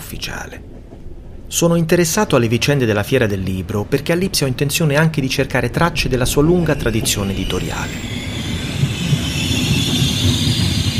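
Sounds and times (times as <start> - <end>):
train rumbling as it slows into a platform: 0.0 - 10.9
speech: 0.1 - 8.2
faint high-pitched train brake squeal: 6.5 - 10.9.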